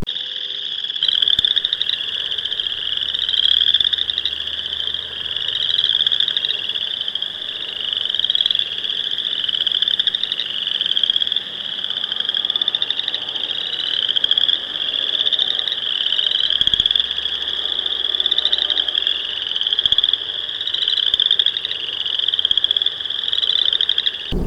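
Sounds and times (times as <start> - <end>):
chorus frogs trilling in a chorus: 0.0 - 24.4.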